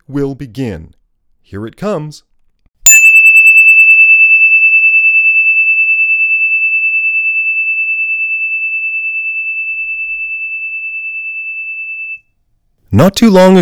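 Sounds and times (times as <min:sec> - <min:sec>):
speech: 0:00.1 - 0:02.3, 0:12.9 - 0:13.5
single bell struck and ringing: 0:02.9 - 0:12.2.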